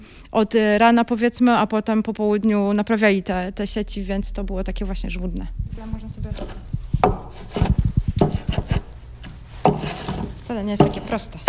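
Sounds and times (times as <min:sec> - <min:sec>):
speech: 0:00.3 - 0:07.8, 0:10.5 - 0:11.4
sharp knocks: 0:05.9 - 0:11.4
hand plane planing wood: 0:06.4 - 0:11.4.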